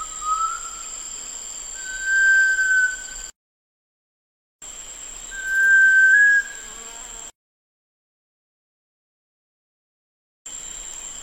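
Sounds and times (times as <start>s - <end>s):
sunbittern song long clear whistle: 0.0s - 1.0s, 1.7s - 3.3s, 5.3s - 6.7s.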